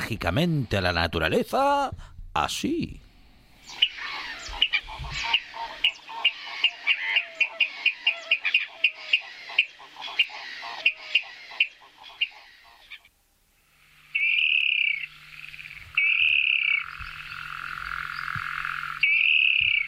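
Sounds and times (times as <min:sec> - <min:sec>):
speech: 0:00.1 - 0:03.0
rail bird sharp high alarm calls: 0:03.6 - 0:13.1, 0:14.1 - 0:19.8.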